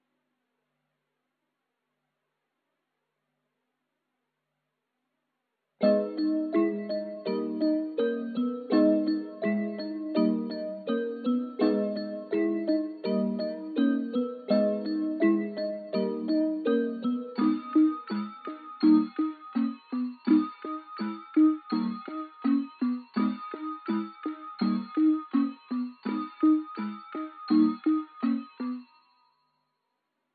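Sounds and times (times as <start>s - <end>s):
bells melody loop in G sharp minor: 5.8s - 29.4s.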